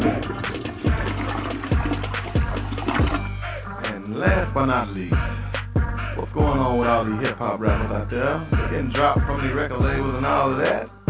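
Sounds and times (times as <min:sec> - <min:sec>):
toilet flushing: 0:00.0 - 0:03.3
speech: 0:04.2 - 0:05.5, 0:06.3 - 0:11.0.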